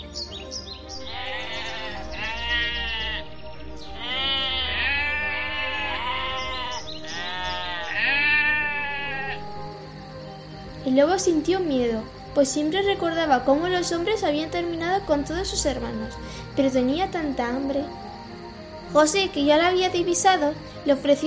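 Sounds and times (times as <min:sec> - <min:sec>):
flock of sheep bleating in a meadow: 0:01.1 - 0:03.3, 0:03.9 - 0:09.5
speech: 0:10.9 - 0:18.0, 0:18.9 - 0:21.2.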